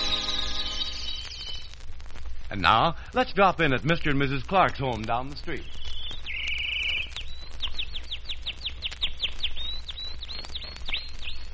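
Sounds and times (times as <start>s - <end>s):
pet canary singing: 0.0s - 1.8s, 5.6s - 11.5s
speech: 2.5s - 5.8s.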